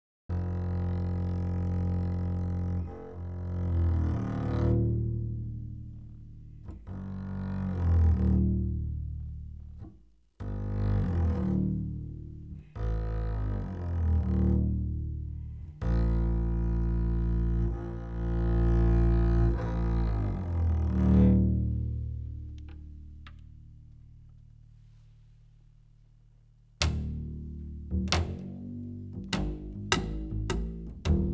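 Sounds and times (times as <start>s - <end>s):
electroacoustic cello: 0.3s - 31.3s.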